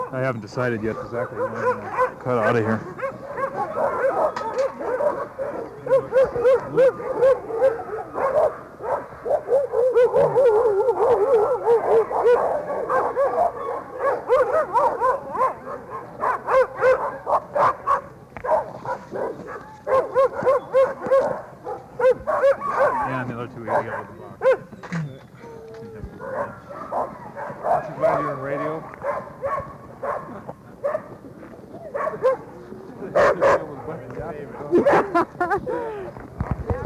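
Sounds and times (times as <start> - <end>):
speech: 0.1 - 3.0, 5.8 - 7.8
dog high yelps and short barks: 1.0 - 31.0, 31.8 - 32.4
dog whimpering and whining: 24.7 - 26.3
laughter: 34.6 - 36.3.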